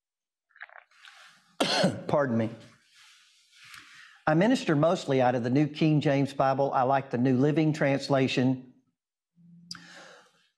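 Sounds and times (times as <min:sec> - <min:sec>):
sipping a drink: 0:00.5 - 0:01.9
speech: 0:01.6 - 0:02.7, 0:04.3 - 0:08.7.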